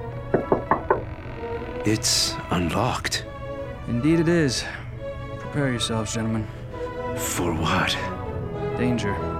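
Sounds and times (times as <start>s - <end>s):
firm knocking on a wooden door: 0.2s - 1.2s
speech: 1.8s - 3.3s, 3.9s - 4.8s, 5.5s - 6.6s, 7.2s - 8.1s, 8.8s - 9.3s.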